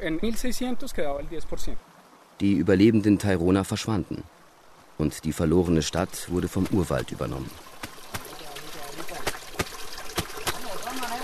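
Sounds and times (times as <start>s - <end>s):
speech: 0.0s - 4.4s, 5.0s - 7.7s
stream water running and trickling: 0.0s - 11.2s
laundry slapping while being washed in a stream: 6.5s - 7.1s, 7.7s - 11.0s.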